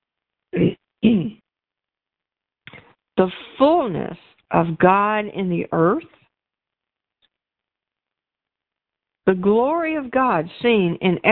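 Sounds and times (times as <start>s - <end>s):
harsh coughs after swallowing the wrong way: 1.0s - 1.4s
speech: 3.2s - 6.2s, 9.3s - 11.3s.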